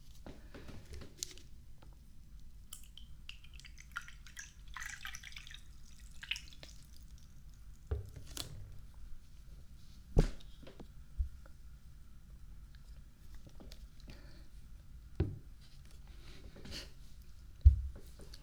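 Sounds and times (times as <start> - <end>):
low steady hum: 0.0 - 18.4
water poured into a cup for a guest: 2.8 - 7.9.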